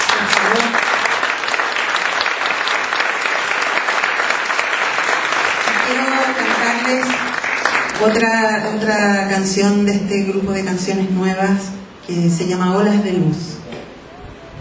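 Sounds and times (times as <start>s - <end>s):
audience applause after a song at a live music performance: 0.0s - 8.4s
speech: 8.0s - 13.6s.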